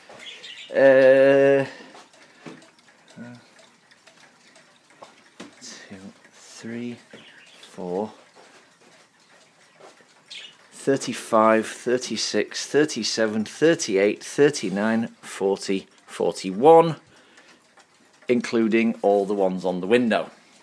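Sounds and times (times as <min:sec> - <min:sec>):
cuckoo clocks hooting: 0:00.0 - 0:20.3
speech: 0:00.7 - 0:01.8, 0:10.9 - 0:17.1, 0:18.3 - 0:20.4.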